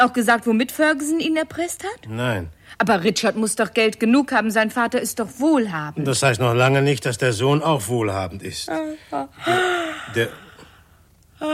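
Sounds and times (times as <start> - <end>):
speech: 0.0 - 10.4, 11.4 - 11.5
person yawning: 8.9 - 10.7.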